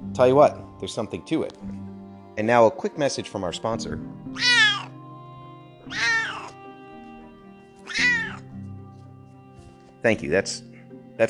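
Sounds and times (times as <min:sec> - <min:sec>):
speech: 0:00.2 - 0:01.8, 0:02.4 - 0:04.6, 0:10.0 - 0:11.2
cat meowing to be fed: 0:04.3 - 0:04.9, 0:05.8 - 0:06.6, 0:07.8 - 0:08.5.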